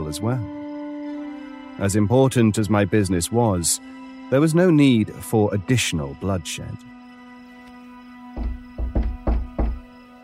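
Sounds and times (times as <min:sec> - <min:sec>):
speech: 0:00.1 - 0:00.6, 0:01.8 - 0:07.0
firm knocking on a wooden door: 0:08.4 - 0:09.9.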